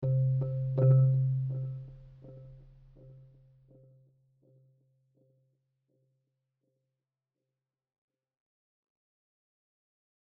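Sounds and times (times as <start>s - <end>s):
marimba in game music: 0.0s - 3.2s.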